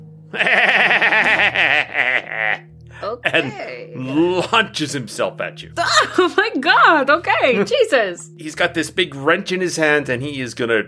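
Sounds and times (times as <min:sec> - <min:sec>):
speech: 0:00.3 - 0:02.0, 0:03.3 - 0:10.8
voice imitating a manic goat-like bleating laugh: 0:00.3 - 0:04.3.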